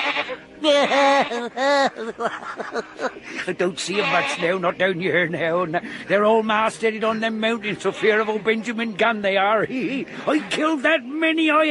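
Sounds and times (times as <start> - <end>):
goat bleating: 0.0 - 1.6, 3.8 - 4.7, 7.7 - 8.8
laughter: 0.6 - 4.0
speech: 0.6 - 11.6.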